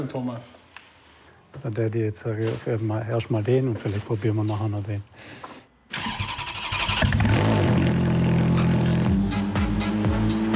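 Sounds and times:
speech: 0:00.0 - 0:00.6, 0:01.5 - 0:06.1
Ferrari F430 engine revving while driven on the road: 0:07.0 - 0:10.5.

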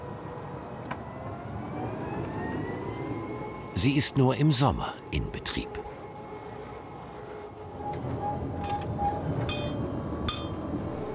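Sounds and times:
mountain tram at 2222 metres altitude rolling along rails: 0:00.0 - 0:11.1
speech: 0:03.8 - 0:06.0
tram wheels and track joints clanking and squeaking: 0:07.7 - 0:11.1.

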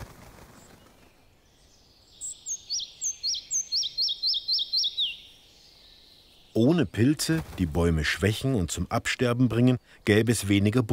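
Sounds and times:
quiet hiss: 0:00.0 - 0:10.9
red-breasted flycatcher singing: 0:00.6 - 0:07.0
speech: 0:06.6 - 0:10.9.

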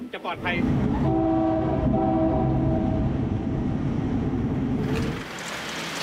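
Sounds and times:
train running at no more than 30 km/h rumbling: 0:00.0 - 0:06.0
train horn blaring at a level crossing on the Mahachai to Bangkok line: 0:00.7 - 0:03.6.

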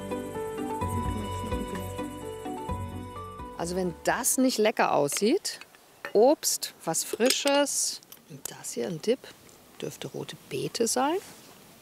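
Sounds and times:
crickets chirping: 0:00.0 - 0:05.1
speech: 0:03.6 - 0:11.4.

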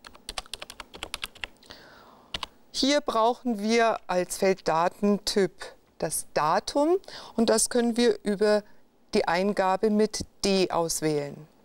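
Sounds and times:
quiet typing on a computer keyboard: 0:00.0 - 0:01.5, 0:02.3 - 0:02.5
speech: 0:02.8 - 0:11.5.

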